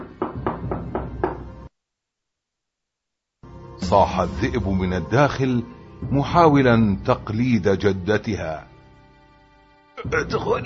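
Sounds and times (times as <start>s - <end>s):
knocking on a wooden door: 0.0s - 1.5s
speech: 3.9s - 8.7s, 10.0s - 10.6s.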